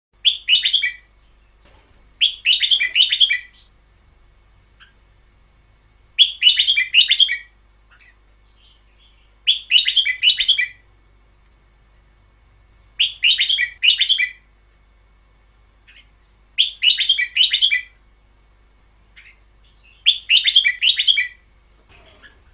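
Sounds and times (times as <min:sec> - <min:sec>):
caged bird singing a long doubled call: 0:00.2 - 0:03.8, 0:04.7 - 0:05.1, 0:06.1 - 0:11.0, 0:12.9 - 0:14.5, 0:15.8 - 0:18.1, 0:19.0 - 0:22.5.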